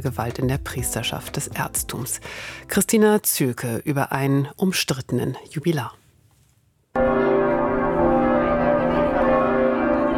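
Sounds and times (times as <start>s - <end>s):
speech: 0.0s - 6.0s
cathedral church bells pealing: 7.0s - 10.1s.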